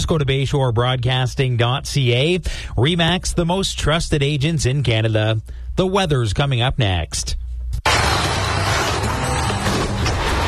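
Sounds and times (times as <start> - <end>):
speech: 0.1 - 7.4
scattering shattering debris: 7.9 - 10.4.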